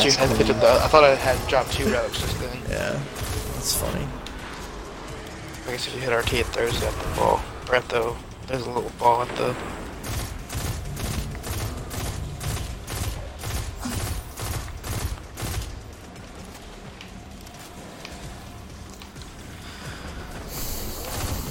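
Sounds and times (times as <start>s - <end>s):
video game gunfire: 0.0s - 4.0s, 5.7s - 8.0s, 8.6s - 16.4s, 20.6s - 21.4s
speech: 0.0s - 4.2s, 5.6s - 10.2s
video game mechanical noise: 0.0s - 21.4s.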